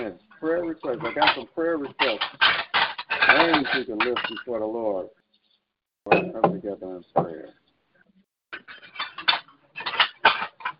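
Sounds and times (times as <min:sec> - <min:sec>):
dishes and cutlery rattling and clinking: 0:00.0 - 0:04.6, 0:06.1 - 0:06.6, 0:08.6 - 0:10.7
speech: 0:00.0 - 0:05.2, 0:06.0 - 0:07.6.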